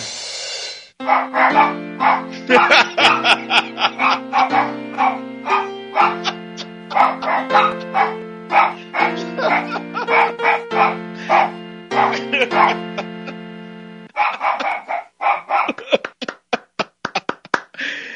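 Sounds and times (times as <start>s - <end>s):
dog barks pitched and sequenced into a bouncy melody: 1.0s - 13.1s, 14.1s - 15.8s
laughter: 2.3s - 5.2s, 6.0s - 8.1s, 8.7s - 10.4s, 12.0s - 13.4s, 14.1s - 18.0s.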